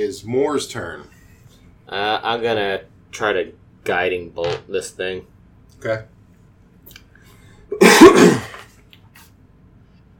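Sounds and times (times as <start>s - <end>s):
speech: 0.0s - 1.2s, 1.9s - 6.1s
single harsh cough: 7.7s - 8.7s.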